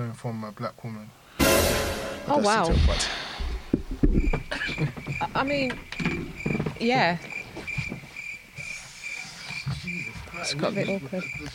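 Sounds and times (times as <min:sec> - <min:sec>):
speech: 0:00.1 - 0:03.3, 0:04.1 - 0:05.9, 0:06.8 - 0:07.3, 0:10.4 - 0:11.5
crickets chirping: 0:03.4 - 0:11.5.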